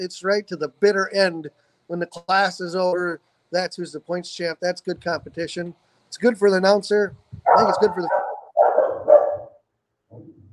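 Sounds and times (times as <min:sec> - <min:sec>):
speech: 0:00.0 - 0:08.2
dog barking: 0:07.5 - 0:09.6.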